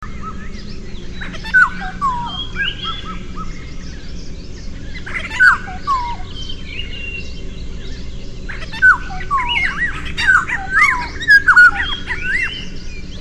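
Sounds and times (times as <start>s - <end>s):
two male Oriolus xanthornus singing in Kaziranga National Park Assam: 0.0s - 13.1s.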